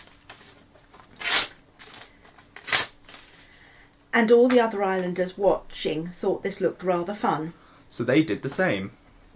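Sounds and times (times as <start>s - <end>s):
paper being torn into pieces: 0.3s - 3.3s
speech: 4.2s - 9.0s.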